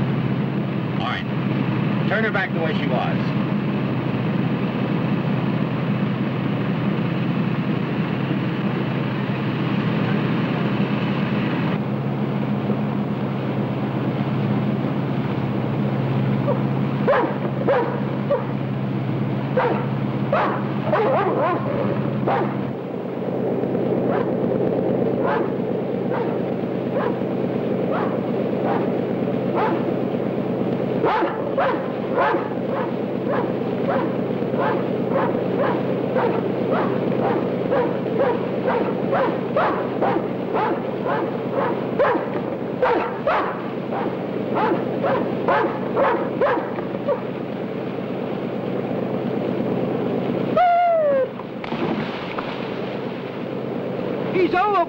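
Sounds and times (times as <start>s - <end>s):
wind: 0.0s - 54.8s
speech: 2.1s - 3.4s
dog barking: 16.4s - 18.5s, 19.6s - 22.6s, 24.1s - 24.4s, 25.2s - 27.2s, 27.9s - 29.9s, 31.0s - 47.3s.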